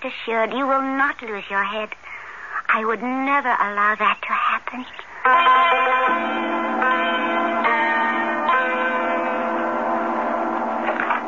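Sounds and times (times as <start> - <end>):
speech: 0.0 - 6.4
large bell struck with deep resonant tolls: 5.2 - 11.2.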